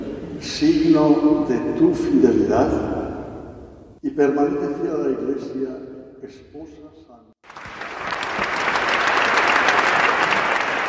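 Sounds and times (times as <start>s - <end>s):
speech: 0.5s - 3.0s, 4.0s - 7.3s
large crowd applauding at episcopal ordination ceremony in space: 7.4s - 10.8s.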